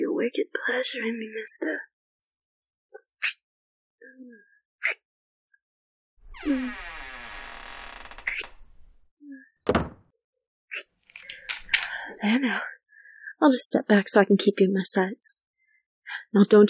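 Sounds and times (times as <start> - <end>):
speech: 0.2 - 1.9, 6.4 - 7.0, 12.2 - 12.8, 13.4 - 15.4, 16.1 - 16.6
door creaking open on a long groaning hinge: 6.3 - 9.1, 9.7 - 10.0, 11.2 - 12.0
door shutting with a solid thud: 9.7 - 10.0
door latch clicking and rattling: 11.2 - 12.0.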